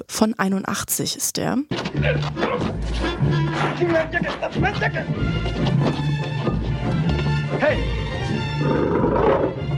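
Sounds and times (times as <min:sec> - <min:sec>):
speech: 0:00.0 - 0:06.4, 0:07.5 - 0:08.0
lions roaring in an adventure comedy film: 0:08.3 - 0:09.6.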